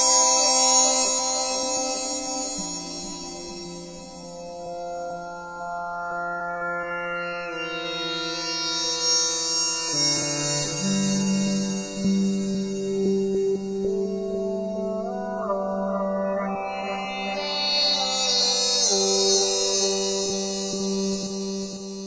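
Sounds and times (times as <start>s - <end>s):
guitar flower pads: 0.2s - 21.9s.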